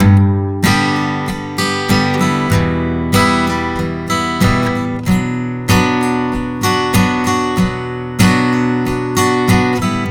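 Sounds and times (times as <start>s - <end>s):
acoustic guitar strumming a G major chord in pop rock style: 0.0s - 10.0s.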